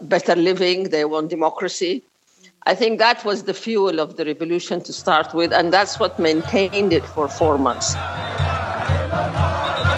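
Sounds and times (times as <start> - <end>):
speech: 0.1 - 8.4
large jubilant crowd cheering and chanting in Khartoum: 5.2 - 9.9.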